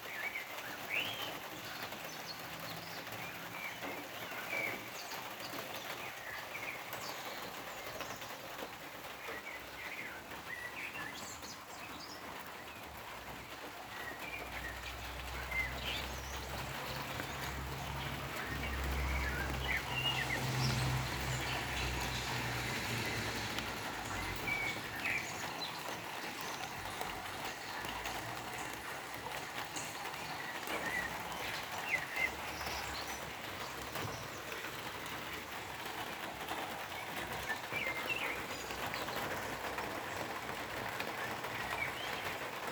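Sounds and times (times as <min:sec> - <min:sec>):
rain on a hut: 0:00.0 - 0:42.6.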